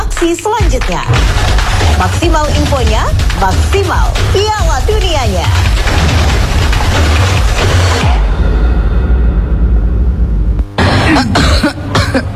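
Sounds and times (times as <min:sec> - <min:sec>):
speech: 0:00.2 - 0:08.3, 0:11.1 - 0:12.3
loud steady rumbling: 0:00.6 - 0:12.3
woman coughing: 0:10.8 - 0:12.3.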